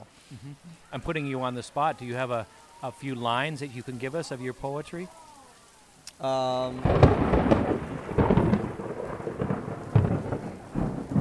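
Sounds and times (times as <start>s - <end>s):
heavy rain in a thunderstorm: 0.0s - 11.1s
speech: 0.4s - 5.2s, 6.2s - 7.8s
rolling thunder: 6.6s - 11.1s.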